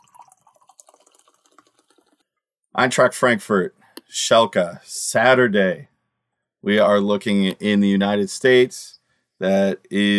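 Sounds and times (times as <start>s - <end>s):
drink being poured: 0.0s - 2.3s
speech: 2.8s - 5.9s, 6.6s - 10.1s.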